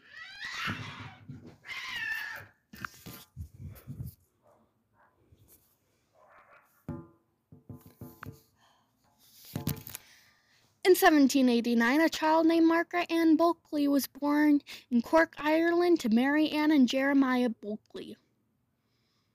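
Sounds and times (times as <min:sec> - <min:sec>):
fighting cats yowling and screeching: 0:00.0 - 0:02.7
fighting cats hissing: 0:00.0 - 0:03.4
speech: 0:10.9 - 0:18.2.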